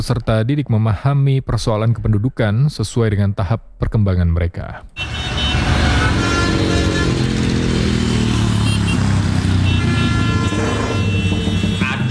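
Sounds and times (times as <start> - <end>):
speech: 0.0 - 5.1
motorcycle with booming aftermarket exhaust revving: 5.0 - 12.0.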